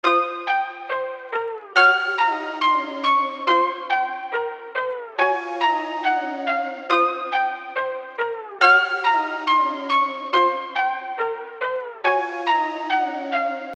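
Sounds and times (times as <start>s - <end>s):
melody loop: 0.0s - 13.7s.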